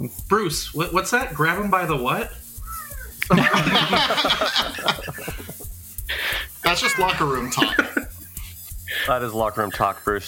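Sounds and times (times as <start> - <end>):
speech: 0.0 - 2.4, 3.3 - 5.3, 6.1 - 8.0, 9.0 - 10.2
hissy noise: 0.0 - 10.2
cat meowing: 2.6 - 3.3, 6.6 - 7.8
laughter: 3.3 - 8.3.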